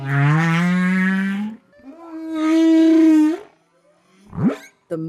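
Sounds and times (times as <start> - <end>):
long drawn-out moaning whale tones: 0.0 - 4.6
whale song: 1.3 - 4.8.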